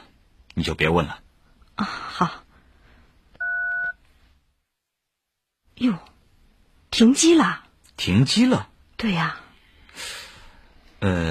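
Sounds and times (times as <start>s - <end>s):
speech: 0.6s - 2.4s, 5.8s - 6.1s, 7.0s - 9.4s, 11.0s - 11.2s
telephone keypad dialing tone, dual-pitched beep: 3.4s - 3.9s.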